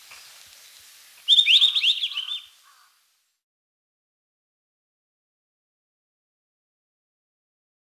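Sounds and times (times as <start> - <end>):
White-browed bush robin singing: 0.0 - 2.9.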